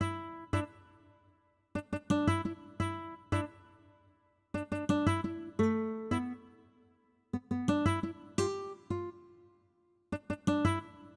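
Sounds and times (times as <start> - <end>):
hip hop exotica guitar in E minor at 86 bpm: 0.0 - 0.9, 1.8 - 3.8, 4.6 - 6.6, 7.4 - 9.3, 10.1 - 11.1.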